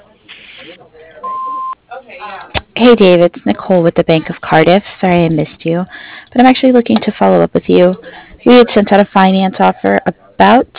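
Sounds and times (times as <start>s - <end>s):
answering machine beep after voicemail greeting: 1.2s - 1.8s
speech: 2.2s - 10.7s.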